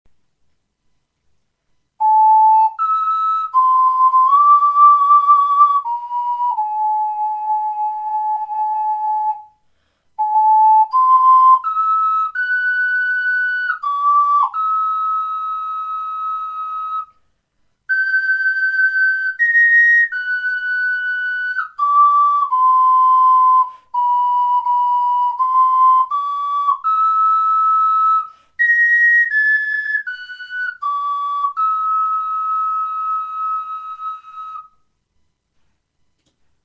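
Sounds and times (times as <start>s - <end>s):
soprano ocarina melody: 2.0s - 9.6s, 10.2s - 34.9s.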